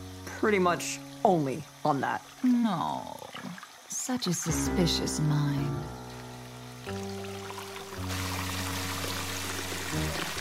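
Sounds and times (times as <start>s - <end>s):
speech: 0.4s - 5.9s, 6.9s - 7.1s
hot water pouring into a filling bubble bath: 1.3s - 4.7s, 6.2s - 10.3s.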